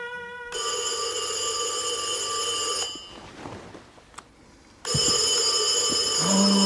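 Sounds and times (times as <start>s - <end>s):
telephone ringing: 0.5s - 3.3s, 4.9s - 6.6s.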